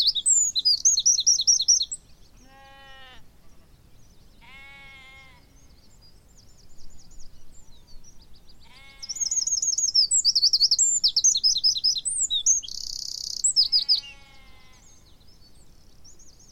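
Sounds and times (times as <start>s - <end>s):
Eurasian wren Troglodytes troglodytes song: 0.0s - 2.6s, 5.2s - 16.4s.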